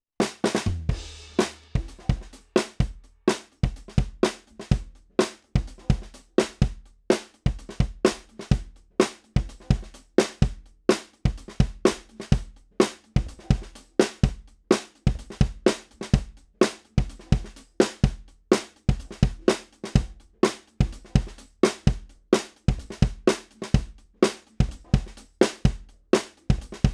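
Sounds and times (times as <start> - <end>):
drum kit recorded with Austrian Audio OC18 microphone: 0.2 - 26.9.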